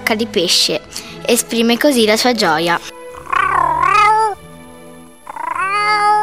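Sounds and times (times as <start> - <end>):
speech: 0.1 - 2.9
cat meowing: 3.1 - 4.4, 5.2 - 6.2.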